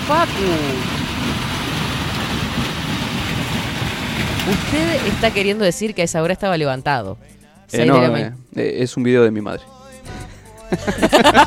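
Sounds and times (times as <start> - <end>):
hail falling: 0.0 - 5.7
speech: 0.1 - 1.5, 4.5 - 9.7, 10.7 - 11.4
person murmuring: 7.8 - 8.4
laughter: 10.7 - 11.4.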